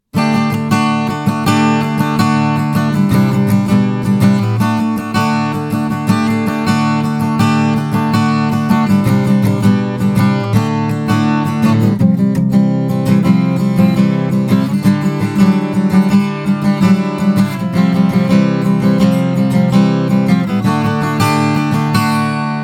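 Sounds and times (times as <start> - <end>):
strumming into a microphone: 0.1 - 22.6.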